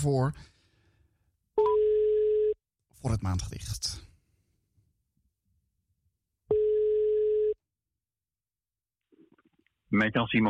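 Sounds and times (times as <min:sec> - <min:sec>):
speech: 0:00.0 - 0:00.5, 0:03.0 - 0:04.1, 0:09.9 - 0:10.4
steady mid-pitched telephone tone as a call is placed: 0:01.6 - 0:02.6, 0:06.5 - 0:07.6.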